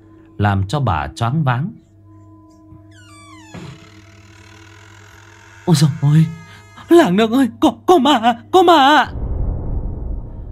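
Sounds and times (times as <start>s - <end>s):
speech: 0.4s - 1.8s, 5.7s - 9.2s
bedroom door creaking open: 2.8s - 7.3s.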